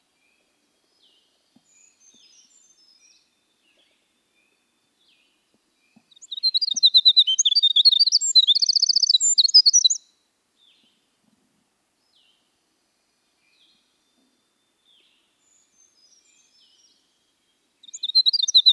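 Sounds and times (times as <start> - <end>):
winter wren singing rapid high trills and twitters: 6.3 - 10.0.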